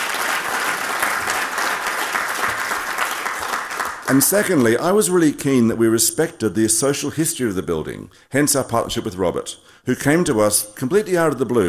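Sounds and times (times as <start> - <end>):
crowd applauding: 0.0 - 4.8
speech: 4.1 - 11.6.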